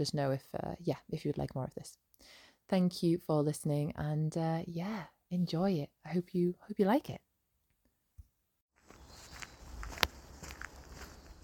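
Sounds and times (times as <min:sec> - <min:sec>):
speech: 0:00.0 - 0:07.3
footsteps on a walk along a wall: 0:08.8 - 0:11.4.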